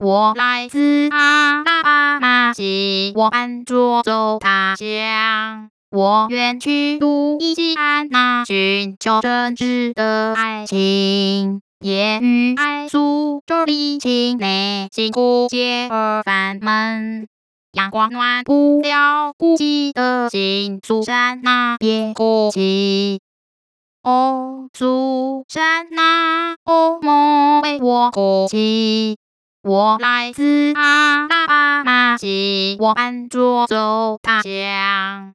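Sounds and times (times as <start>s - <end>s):
synthetic female Mandarin singing voice: 0.0s - 23.2s, 24.0s - 35.3s.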